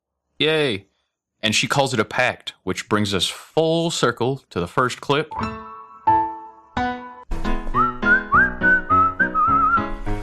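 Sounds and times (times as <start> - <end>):
speech: 0.4 - 5.6
people whistling a tune: 7.8 - 10.0.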